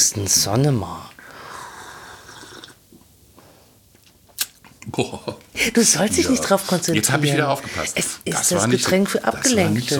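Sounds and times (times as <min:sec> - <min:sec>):
speech: 0:00.0 - 0:01.1, 0:04.9 - 0:09.9
liquid pouring into a glass: 0:02.1 - 0:02.8.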